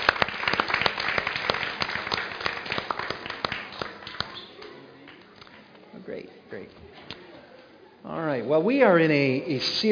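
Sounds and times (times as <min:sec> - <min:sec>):
audience applause for departing kids: 0:00.0 - 0:04.4
speech: 0:06.2 - 0:07.1, 0:08.0 - 0:09.8.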